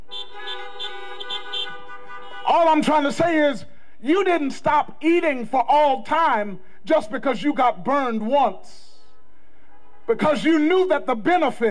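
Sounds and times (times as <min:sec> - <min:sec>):
car horns honking: 0:00.0 - 0:03.2
speech: 0:02.5 - 0:08.8, 0:10.1 - 0:11.6.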